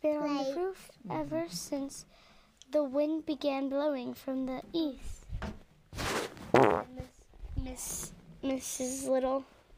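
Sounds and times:
speech: 0.1 - 5.6, 7.7 - 9.6
buzzy sputtering fart noises blown by a person's mouth: 5.9 - 7.1.

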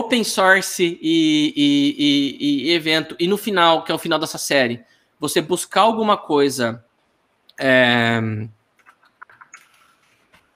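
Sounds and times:
speech: 0.1 - 6.9, 7.6 - 8.6
noisy keyboard typing with sharp key clicks: 8.8 - 10.5.

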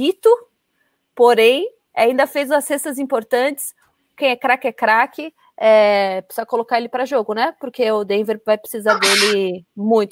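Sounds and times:
speech: 0.0 - 0.5, 1.2 - 10.0
sharp hissy sneeze: 8.9 - 9.4.

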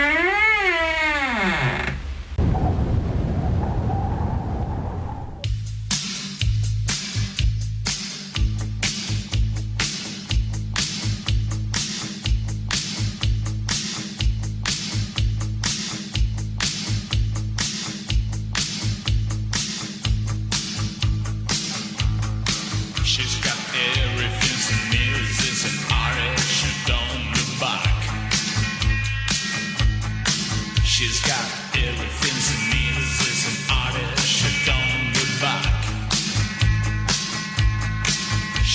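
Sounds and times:
short creaky door swinging open with a wavering squeal: 0.0 - 2.1
hissing whoosh: 2.4 - 5.5
loud driving rhythmic music with a steady beat: 5.7 - 38.7.

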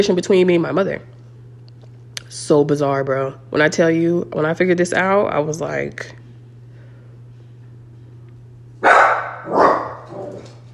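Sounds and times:
speech: 0.0 - 1.1, 2.3 - 6.2
faint steady electrical hum: 0.0 - 10.7
dog barking: 8.8 - 10.4.

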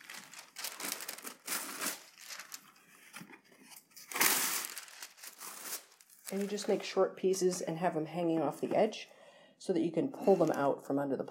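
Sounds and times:
wax paper crinkling while lining a plate: 0.0 - 7.0
speech: 6.3 - 11.2.

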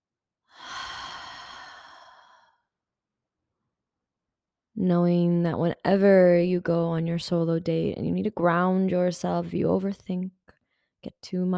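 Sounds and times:
long deep breathy exhale through the mouth: 0.6 - 2.5
speech: 4.8 - 10.4, 11.0 - 11.5.

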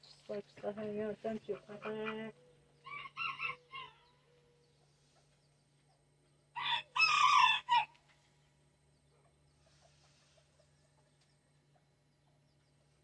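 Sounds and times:
speech: 0.3 - 2.5
rooster crowing from a flock of chickens and ducks: 2.8 - 4.1, 6.6 - 8.0.

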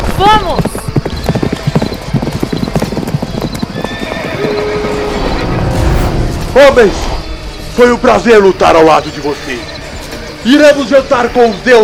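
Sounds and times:
horse hooves clip-clopping in a galloping rhythm: 0.0 - 5.1
horse whinnying: 3.5 - 5.5
busy noisy commotion: 4.2 - 10.1
speech: 6.6 - 7.1, 7.8 - 9.7, 10.4 - 11.8.

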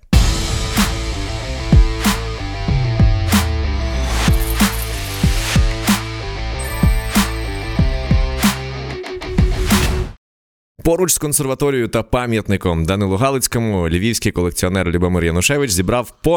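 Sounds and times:
podcast intro jingle with bass and sharp percussive hits: 0.2 - 8.7
speech: 10.9 - 16.3.

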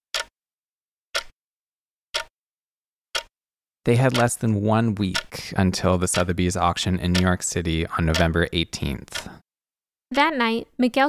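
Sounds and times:
clock ticking: 0.1 - 0.3, 1.1 - 1.4, 2.1 - 2.3, 3.1 - 3.3, 3.9 - 9.4
speech: 3.9 - 9.4, 10.1 - 11.0.

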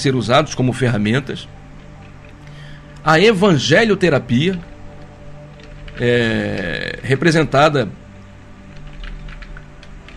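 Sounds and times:
speech: 0.0 - 1.6, 3.0 - 4.7, 6.0 - 8.0
steady low electrical hum: 0.0 - 10.1
rapid keyboard typing with plastic key clicks: 4.3 - 6.8, 8.7 - 10.1.

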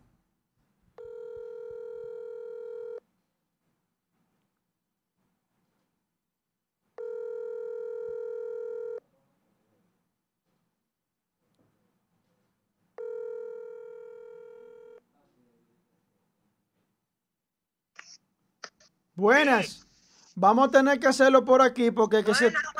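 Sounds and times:
outgoing phone call ringing tones: 1.0 - 3.0, 7.0 - 9.0, 13.0 - 15.0
speech: 19.2 - 19.8, 20.4 - 22.7
laughter: 22.2 - 22.7.

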